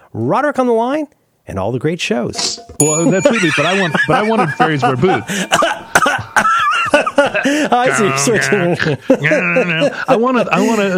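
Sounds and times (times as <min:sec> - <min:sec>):
speech: 0:00.1 - 0:05.8, 0:06.4 - 0:10.9
laughter: 0:02.9 - 0:10.9
harsh coughs: 0:05.3 - 0:06.5.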